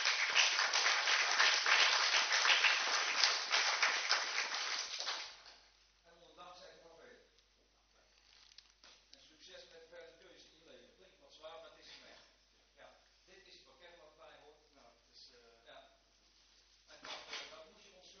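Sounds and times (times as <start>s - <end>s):
loud applause from council members: 0.0s - 5.5s.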